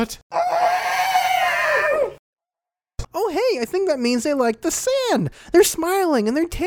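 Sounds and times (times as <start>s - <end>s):
speech: 0.0s - 0.5s, 3.2s - 6.6s
fictional creature shrieking: 0.3s - 2.2s.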